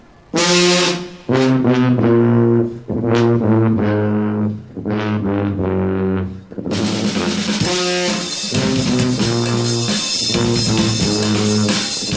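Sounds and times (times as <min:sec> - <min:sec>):
alternative marching brass band playing at a street band festival: 0:00.3 - 0:12.1
drums and cymbals: 0:06.7 - 0:12.1.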